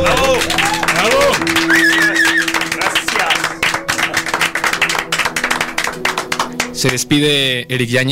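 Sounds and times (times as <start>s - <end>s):
crowd applauding loudly with dense continuous clapping: 0.0s - 7.3s
cheers or whistles from a crowd: 0.1s - 2.8s
speech: 6.8s - 8.1s.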